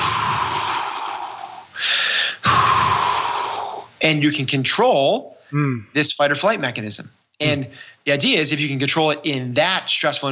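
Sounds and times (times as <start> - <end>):
loud forceful breaths of a breathing exercise focused on the exhale: 0.0 - 4.0
speech: 4.0 - 10.3.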